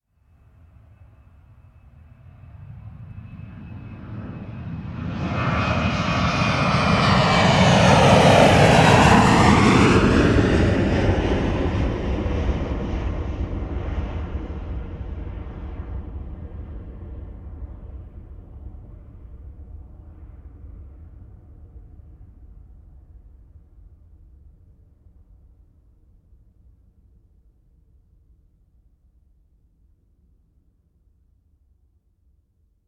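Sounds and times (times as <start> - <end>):
commercial jet aircraft passing low: 0.4 - 21.1.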